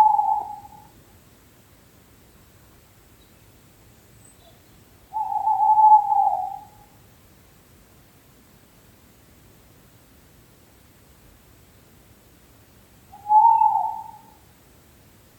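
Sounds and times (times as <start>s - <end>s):
owl hooting: 0.0s - 1.0s, 4.4s - 7.0s, 13.1s - 14.5s.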